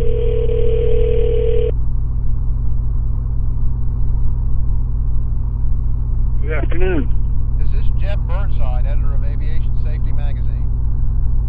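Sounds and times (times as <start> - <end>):
phone ringing tone from smartphone via Bluetooth headset: 0.0 - 1.7
loud continuous drone of idling airplane engine: 0.0 - 11.4.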